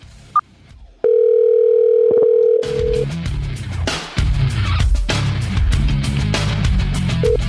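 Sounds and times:
music: 0.0s - 1.4s, 2.6s - 7.4s
telephone dial tone as a call is placed: 1.0s - 3.0s.

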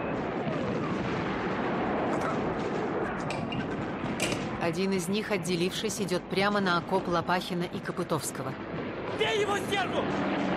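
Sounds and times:
bombs dropped from aircraft exploding in a wartime battle: 0.0s - 4.8s
continuous rumbling roar of blasts and gunfire in a film battle: 0.0s - 10.5s
speech: 4.7s - 10.5s.

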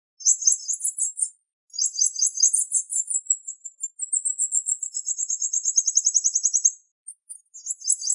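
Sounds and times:
bird song with high rapid trills and buzzy rolls: 0.2s - 8.1s.

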